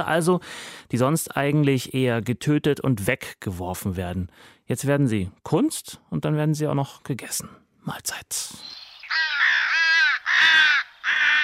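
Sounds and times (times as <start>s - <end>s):
speech: 0.0s - 9.3s
crow cawing: 9.0s - 11.4s.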